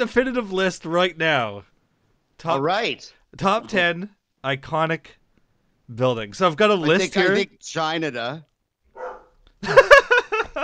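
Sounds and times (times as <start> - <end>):
speech: 0.0 - 1.7, 2.4 - 5.2, 5.9 - 8.5, 9.6 - 10.0
dog barking: 8.9 - 9.4
dog whining: 9.0 - 9.4
laughter: 9.6 - 10.6.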